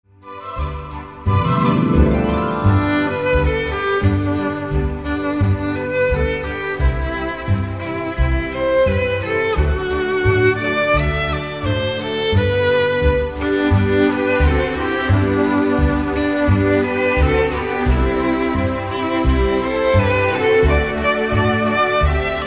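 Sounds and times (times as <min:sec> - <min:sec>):
jingle bell: 0:00.2 - 0:22.4.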